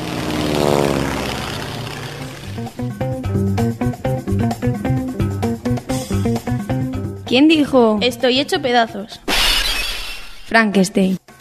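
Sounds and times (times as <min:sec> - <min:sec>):
airplane propeller engine drone: 0:00.0 - 0:07.3
speech: 0:07.3 - 0:09.3, 0:10.5 - 0:11.2.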